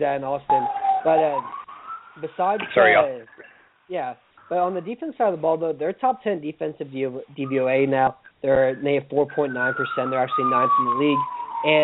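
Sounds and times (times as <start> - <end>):
speech: 0.0 - 1.6, 2.2 - 11.8
fire alarms sounding as a steady high electronic tone: 0.5 - 3.0, 9.3 - 11.8.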